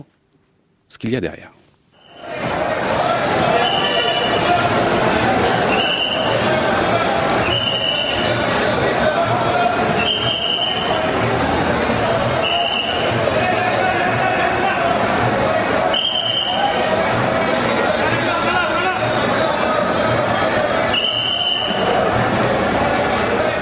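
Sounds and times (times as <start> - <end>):
speech: 1.0 - 1.6
short sharp whistle blasts at a bus station: 2.0 - 2.4, 3.6 - 4.5, 5.6 - 6.4, 7.4 - 8.5, 10.0 - 11.0, 12.4 - 13.2, 15.9 - 16.8, 20.8 - 22.0
crowd din at a bus station: 2.0 - 23.6
men shouting at a bus station: 2.3 - 11.2, 12.2 - 15.8, 17.9 - 20.7.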